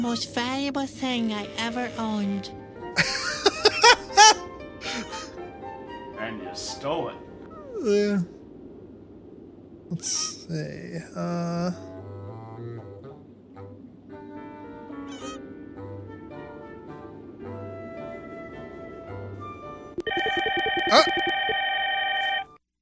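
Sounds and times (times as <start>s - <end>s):
speech: 0.0s - 3.2s, 6.6s - 8.4s, 9.9s - 11.9s
laughter: 3.0s - 5.2s
telephone ringing with electronic trill: 20.0s - 22.6s.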